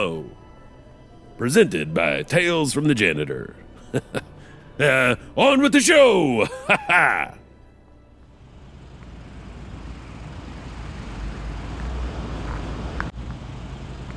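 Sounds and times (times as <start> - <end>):
speech: 0.0 - 0.4, 1.4 - 4.2, 4.8 - 7.4
laughter: 3.8 - 5.2, 6.3 - 7.4
slow-moving traffic rumbling with car engines and road noise: 8.2 - 14.1.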